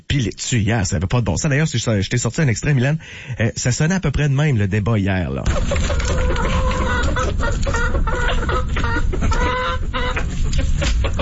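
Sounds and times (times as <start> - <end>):
speech: 0.1 - 6.8, 7.4 - 9.9
chickens clucking and squawking in a henhouse: 5.5 - 11.2.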